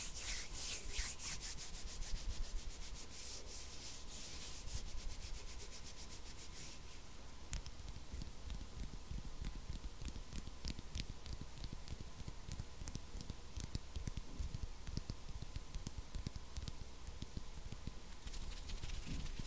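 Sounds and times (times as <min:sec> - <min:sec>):
dry rubbing and scratching of hands: 0:00.0 - 0:12.3, 0:18.1 - 0:19.4
faint steady humming tone: 0:00.0 - 0:19.4
sharp little taps and clicks: 0:07.5 - 0:18.7.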